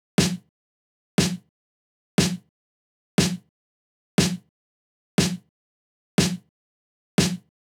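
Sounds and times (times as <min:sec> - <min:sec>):
nu disco snare drum: 0:00.2 - 0:00.5, 0:01.2 - 0:01.5, 0:02.2 - 0:02.5, 0:03.2 - 0:03.5, 0:04.2 - 0:04.5, 0:05.2 - 0:05.5, 0:06.2 - 0:06.5, 0:07.2 - 0:07.5.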